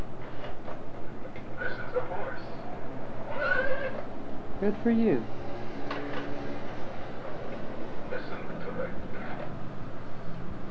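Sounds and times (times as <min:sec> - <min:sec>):
steady noise: 0:00.0 - 0:10.6
toy playing a recorded horse whinny: 0:03.3 - 0:04.0
speech: 0:04.6 - 0:05.4.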